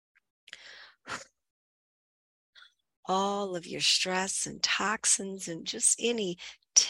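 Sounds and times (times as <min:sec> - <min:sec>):
deep out-breath during a guided relaxation breathing exercise: 0:00.5 - 0:01.3
speech: 0:03.1 - 0:06.8.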